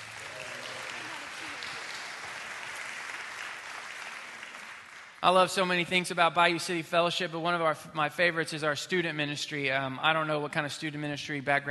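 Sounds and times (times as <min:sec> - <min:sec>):
crowd applauding: 0:00.0 - 0:05.8
speech: 0:05.2 - 0:11.7.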